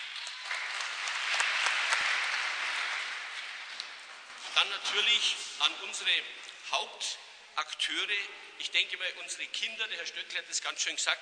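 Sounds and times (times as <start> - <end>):
audience applause: 0.0 - 4.3
speech: 4.6 - 11.1.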